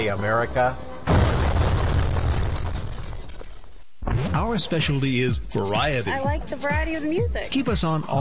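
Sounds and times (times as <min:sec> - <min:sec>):
speech: 0:00.0 - 0:00.9, 0:04.3 - 0:08.2
fireworks exploding with deep booms and crackling bursts: 0:01.1 - 0:04.4.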